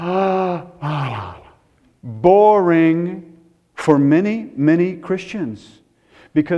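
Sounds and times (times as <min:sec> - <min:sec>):
person performing an exaggerated yawn: 0:00.0 - 0:01.6
speech: 0:02.2 - 0:06.5.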